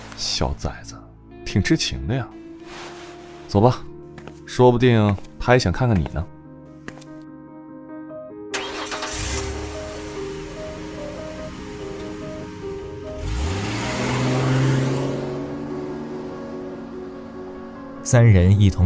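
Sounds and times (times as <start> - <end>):
speech: 0.2 - 2.9, 3.5 - 3.9, 4.5 - 6.4, 18.1 - 18.8
car engine starting, humming and revving as the car drives off: 8.6 - 18.0.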